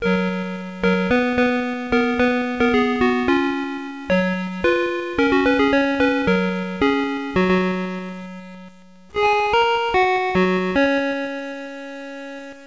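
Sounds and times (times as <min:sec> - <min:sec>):
tune: 0:00.0 - 0:12.6.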